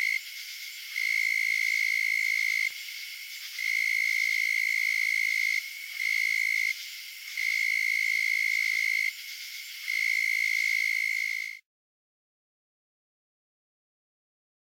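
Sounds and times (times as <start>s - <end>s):
narrow-winged tree cricket trilling: 0.0s - 11.6s.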